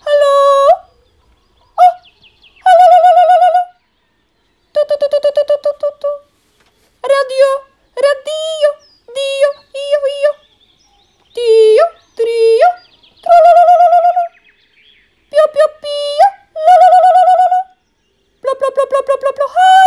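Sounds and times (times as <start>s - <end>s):
human voice imitating a nightingale's song: 0.0s - 1.0s, 1.7s - 3.8s, 4.7s - 6.3s, 7.0s - 10.5s, 11.3s - 14.5s, 15.3s - 17.8s, 18.4s - 19.8s.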